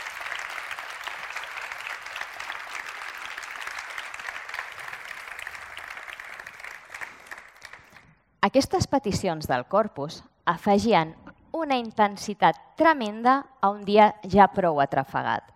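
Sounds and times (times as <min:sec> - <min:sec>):
audience applause: 0:00.0 - 0:08.1
speech: 0:08.4 - 0:15.4.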